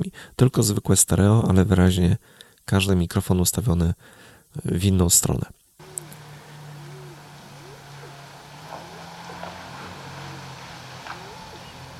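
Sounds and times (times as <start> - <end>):
speech: 0.2 - 5.6
car driving past from left to right: 5.8 - 11.9.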